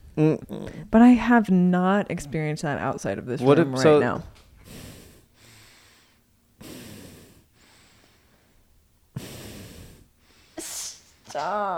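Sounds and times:
speech: 0.2s - 4.4s, 11.4s - 11.7s
short sharp sniff: 4.6s - 11.4s
person imitating heavy snorting breathing: 4.7s - 11.3s.

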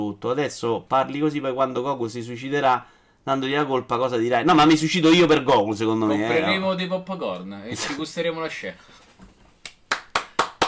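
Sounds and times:
speech: 0.0s - 9.0s
hand claps: 9.6s - 10.6s.

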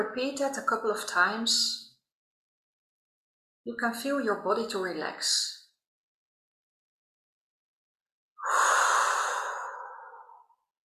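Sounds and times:
speech: 0.0s - 1.9s, 3.6s - 5.6s
slow deep breath during a relaxation exercise: 8.4s - 10.5s.

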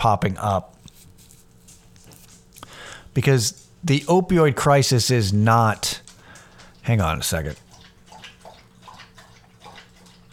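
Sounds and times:
speech: 0.0s - 0.8s, 3.2s - 6.0s, 6.9s - 7.6s
pet lapping water from its dish: 5.4s - 10.3s.

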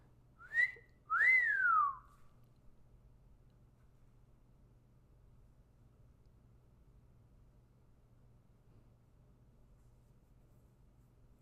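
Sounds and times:
person whistling two clear notes: 0.4s - 2.1s.

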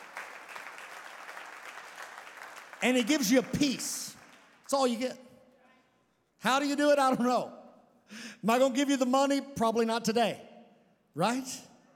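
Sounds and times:
church congregation applauding: 0.0s - 4.8s
speech: 2.8s - 5.2s, 6.4s - 10.5s, 11.2s - 11.7s.

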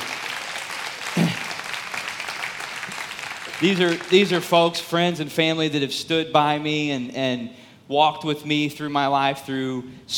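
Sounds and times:
applause from a gathered audience of friends and family: 0.0s - 4.3s
speech: 3.6s - 10.1s.

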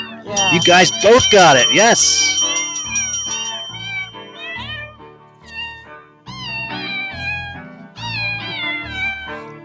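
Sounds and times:
speech: 0.3s - 2.7s
cat meows pitched into a Christmas carol tune: 5.4s - 9.5s.

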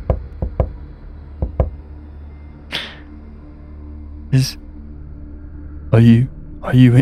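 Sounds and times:
sharp knocks on a door: 0.0s - 0.8s, 1.4s - 1.8s
speech: 4.3s - 4.6s, 5.9s - 6.9s.

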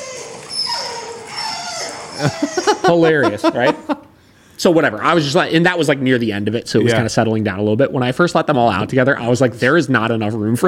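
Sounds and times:
dogs whining and yipping in a played video: 0.0s - 3.4s
laughter: 2.2s - 4.1s
speech: 2.2s - 10.6s.

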